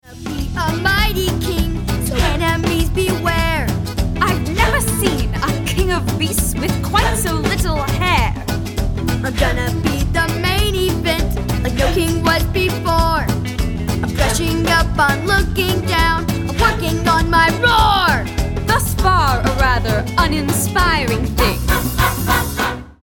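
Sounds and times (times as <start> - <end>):
vocals: 0.0 - 22.7.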